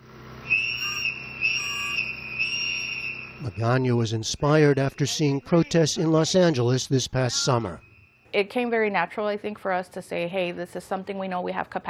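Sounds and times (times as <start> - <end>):
shrill high warning whistle blasts in the Pilsen neighborhood: 0.4 - 4.1, 7.3 - 8.3
speech: 3.4 - 11.8.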